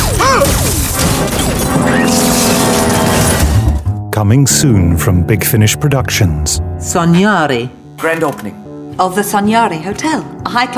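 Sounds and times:
weapon firing in an audio drama: 0.0 - 3.6
speech: 4.2 - 10.7.

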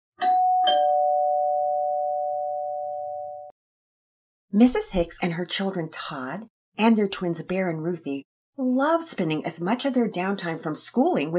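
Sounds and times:
doorbell chiming ding-dong: 0.2 - 3.5
speech: 4.5 - 11.3.

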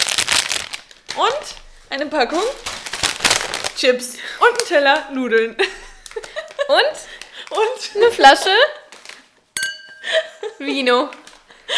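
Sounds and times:
plastic chocolate packet crinkling: 0.0 - 9.4
speech: 1.2 - 2.7, 3.8 - 8.8, 10.6 - 11.7.

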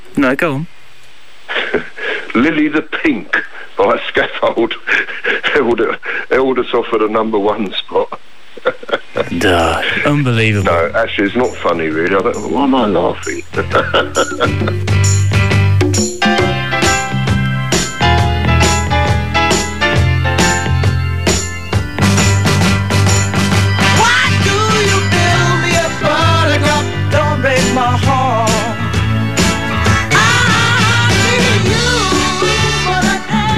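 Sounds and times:
speech: 0.2 - 0.8, 1.7 - 15.4
laughter: 1.5 - 2.0, 8.6 - 10.2, 13.4 - 15.3
loud upbeat pop song with drums, bassline, brass-like chords and singing voice: 13.2 - 33.5.

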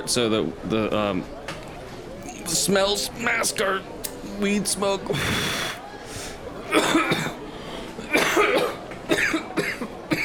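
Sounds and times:
speech: 0.0 - 1.4, 2.5 - 5.6
low murmur in a food court: 0.0 - 10.2
person coughing harshly in a food court: 6.7 - 7.4, 8.1 - 10.2.

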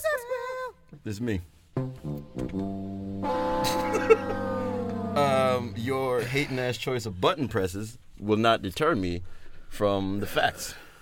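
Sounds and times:
speech: 1.0 - 4.6, 5.2 - 10.8
air horn sound effect blast: 3.2 - 6.5.

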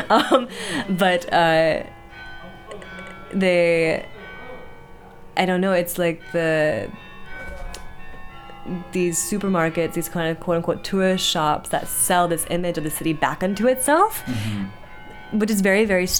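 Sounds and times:
laughter: 0.0 - 1.7
bell chiming the hour: 0.0 - 16.1
speech: 0.1 - 2.0, 2.8 - 4.1, 5.4 - 7.0, 8.7 - 16.1.

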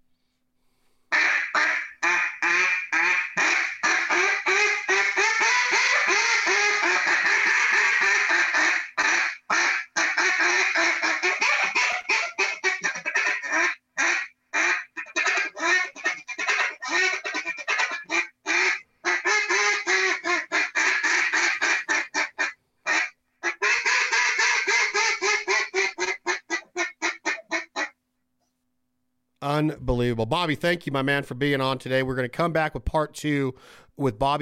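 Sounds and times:
duck quacks blown on a Jargon Mega 4 duck call: 1.1 - 28.0
speech: 30.2 - 34.4.

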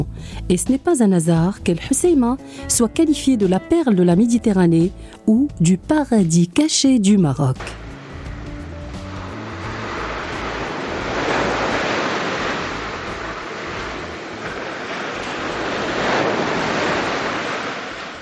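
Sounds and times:
speech: 0.0 - 7.8
Mediterranean Sea waves breaking on a shore at El Hoceima in northern Morocco: 7.6 - 18.2
wind rumble: 7.8 - 18.2.

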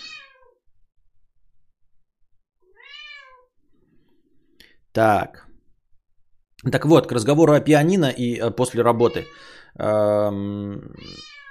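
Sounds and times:
cat meowing: 0.0 - 0.6, 2.6 - 3.5, 9.0 - 9.5, 10.9 - 11.5
speech: 5.0 - 5.4, 6.6 - 11.4.

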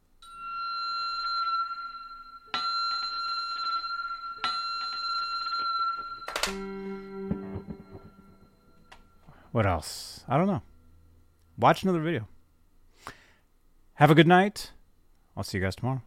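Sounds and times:
bright metallic bell ringing: 0.2 - 10.4
low humming tone: 0.2 - 11.6
sharp clattering hit: 6.2 - 9.4
speech: 6.5 - 6.9, 9.5 - 10.7, 11.6 - 12.3, 14.0 - 14.8, 15.4 - 16.0.

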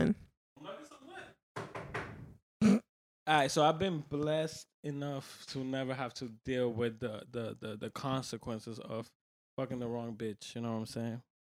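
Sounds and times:
knocking on wood: 1.6 - 2.2
speech: 3.3 - 11.3.

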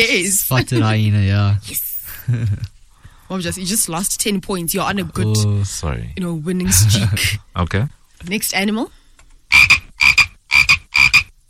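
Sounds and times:
speech: 0.0 - 9.0
frog croaking: 9.5 - 11.4.

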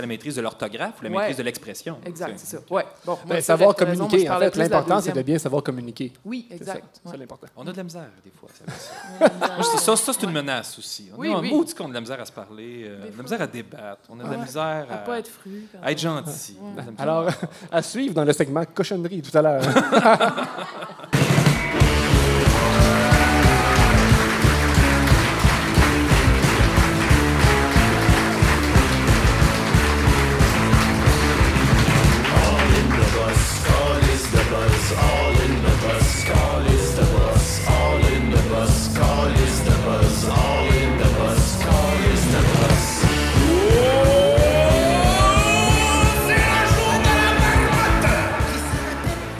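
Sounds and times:
speech: 0.0 - 21.4
laughter: 8.7 - 10.4, 19.6 - 21.2
dense guitars: 21.2 - 49.3
loud full-band song by an Acadian band: 21.2 - 49.3
steady pounding drum beat: 21.2 - 49.3.

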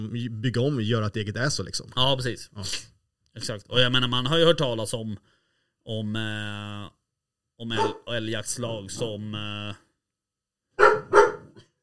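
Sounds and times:
speech: 0.0 - 7.0, 7.6 - 9.8
dog barking: 7.7 - 8.1, 10.8 - 11.6.

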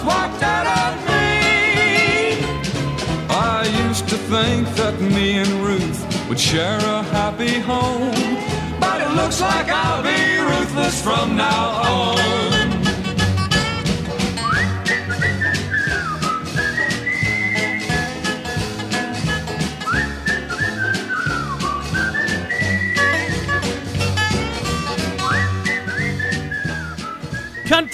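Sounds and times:
steady band backing of a 1967 country song: 0.0 - 27.9
speech: 4.3 - 12.8
bright whistled melody in a 1960s country song: 11.8 - 18.5, 19.2 - 27.9.

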